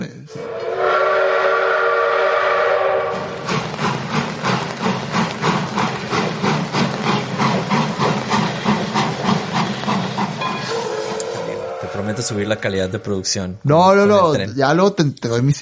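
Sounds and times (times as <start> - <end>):
train whistle: 0.3 - 3.5, 10.4 - 13.6
train rolling past: 0.4 - 13.6
speech: 12.3 - 15.6.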